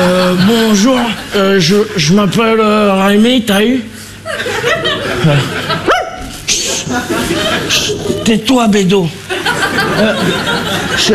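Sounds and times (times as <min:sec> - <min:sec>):
people talking and laughing: 0:00.0 - 0:02.3, 0:04.0 - 0:11.1
speech: 0:00.0 - 0:05.9, 0:06.9 - 0:11.1
dog barking: 0:05.9 - 0:06.3.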